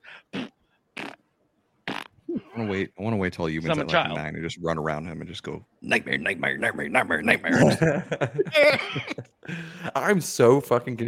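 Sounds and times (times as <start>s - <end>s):
fart sound effects from browser: 0.3s - 1.2s, 1.9s - 2.5s
speech: 2.6s - 11.0s.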